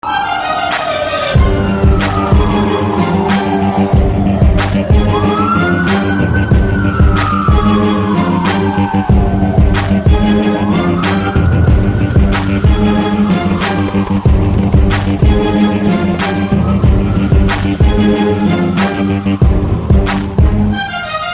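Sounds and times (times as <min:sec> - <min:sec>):
violin hip hop ringtone music: 0:00.0 - 0:21.3.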